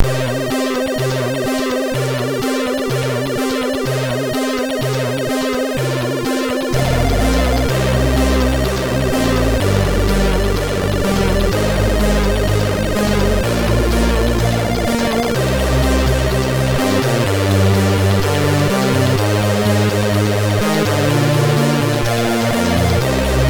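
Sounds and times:
music from a MOS6581R3 SID chip: 0.8s - 23.4s.

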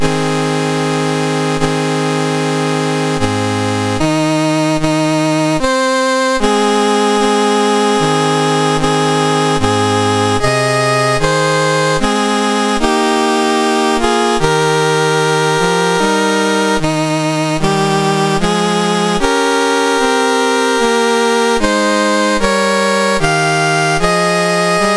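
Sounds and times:
national anthem played on MOS6581R2 sound chip: 0.0s - 24.9s.

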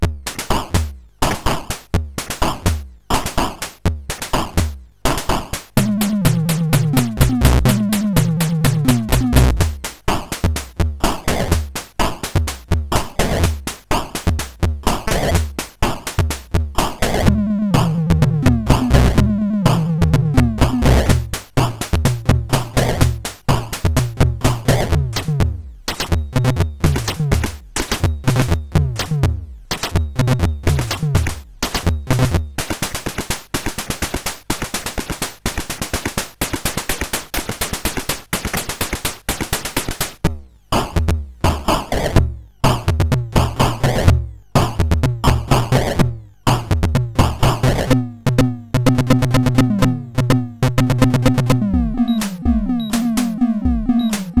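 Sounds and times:
drum on SID CSG8580R5 chip: 0.0s - 54.3s.

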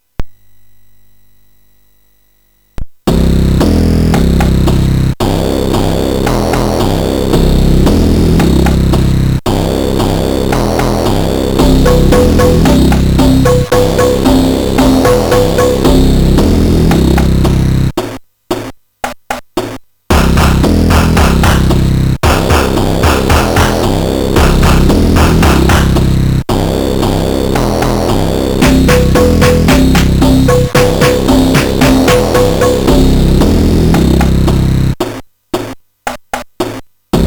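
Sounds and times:
chiptune beat on a SID MOS6581R4 sound chip: 3.1s - 37.2s.

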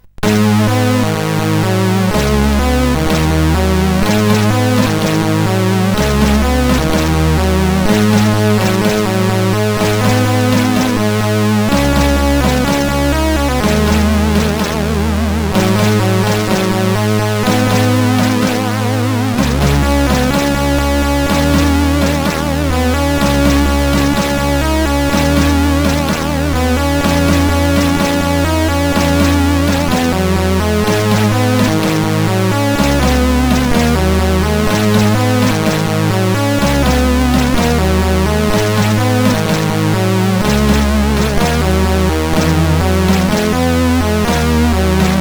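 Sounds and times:
SID CSG8580R5 chip sound: 0.2s - 45.1s.

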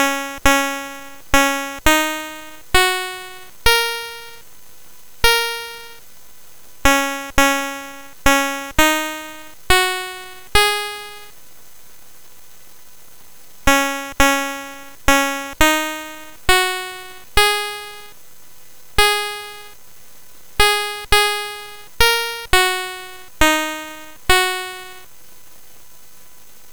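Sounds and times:
folk tune played on a SID 8580R5 sound chip: 0.0s - 4.4s, 5.2s - 6.0s, 6.9s - 11.3s, 13.7s - 18.1s, 19.0s - 19.8s, 20.6s - 25.0s.

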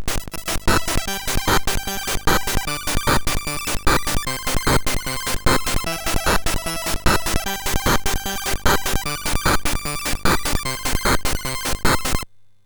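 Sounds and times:
chiptune remix on a MOS6581R4 SID chip: 0.2s - 12.3s.

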